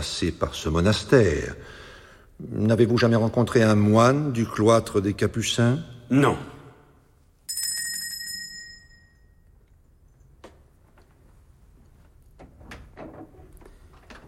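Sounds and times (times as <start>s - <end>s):
speech: 0.0s - 1.8s, 2.4s - 6.5s
bright bell-like chime: 7.5s - 9.5s
door scraping and creaking movement: 12.3s - 14.2s.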